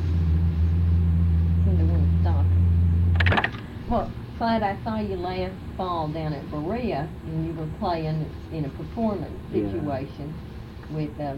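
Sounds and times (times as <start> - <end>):
car engine idling: 0.0 - 11.3
speech: 3.9 - 11.3.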